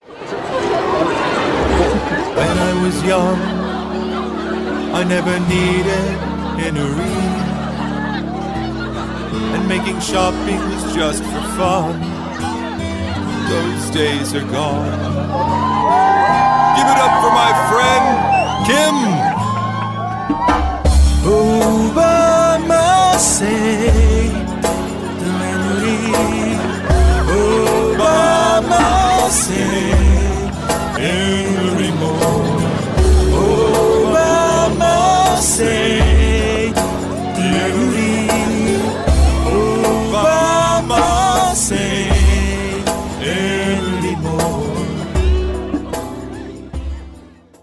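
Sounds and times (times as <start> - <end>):
laughter: 0.0 - 47.6
man singing in English: 1.8 - 7.9, 9.4 - 15.3, 21.1 - 46.0.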